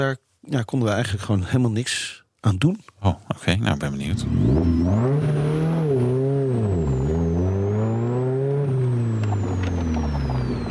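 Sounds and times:
speech: 0:00.0 - 0:05.7
Morgan Plus 4 sports car engine revving: 0:04.0 - 0:10.6.

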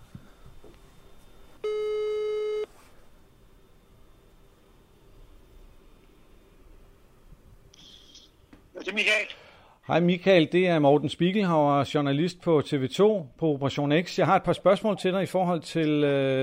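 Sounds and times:
telephone ringback tone while calling: 0:01.6 - 0:02.7
speech: 0:08.9 - 0:16.4.

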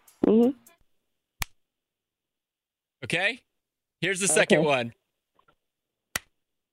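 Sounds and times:
speech: 0:00.3 - 0:00.6, 0:03.1 - 0:05.0
hand slapping bare shoulder: 0:01.4 - 0:01.6, 0:06.1 - 0:06.4.

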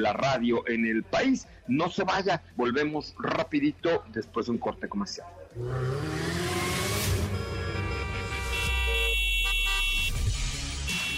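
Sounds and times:
speech: 0:00.0 - 0:06.4
engine and traffic rumble: 0:00.0 - 0:11.1
car horns honking: 0:06.5 - 0:11.1.

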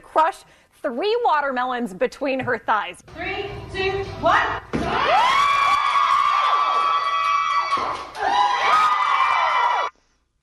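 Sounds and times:
speech: 0:00.2 - 0:05.3
crowd cheering and screaming with high excited voices: 0:04.9 - 0:09.9.

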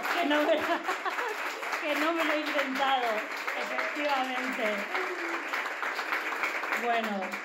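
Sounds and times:
laughter: 0:00.0 - 0:01.6
live audience applause: 0:00.0 - 0:07.4
speech: 0:00.2 - 0:01.2, 0:01.8 - 0:05.5, 0:06.8 - 0:07.4.

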